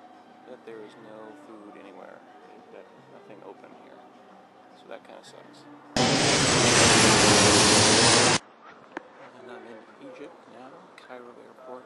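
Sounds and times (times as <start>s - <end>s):
speech: 0.6s - 7.1s, 9.6s - 11.8s
aircraft engines roaring at Munich Airport: 6.0s - 8.4s.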